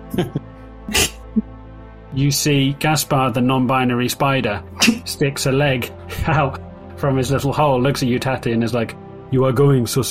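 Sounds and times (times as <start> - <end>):
speech: 0.1 - 1.5, 2.1 - 10.0
person faking a sneeze with their voice: 0.9 - 1.4.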